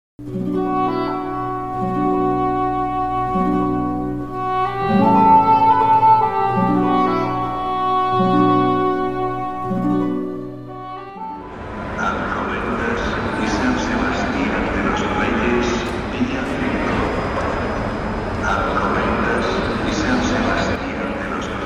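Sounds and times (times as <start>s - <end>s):
sustained tonal music: 0.2s - 14.6s
crowd chatter in a busy train station concourse in Spain: 0.8s - 21.6s.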